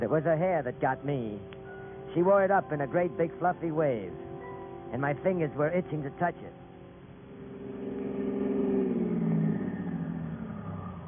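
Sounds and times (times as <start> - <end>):
speech: 0.0 - 4.2, 4.9 - 6.6
car engine revving and faltering: 1.4 - 11.0.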